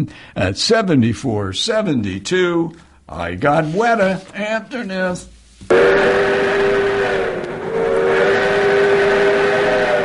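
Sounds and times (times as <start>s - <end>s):
speech: 0.0s - 6.8s
steam train whistle blowing: 5.7s - 10.0s.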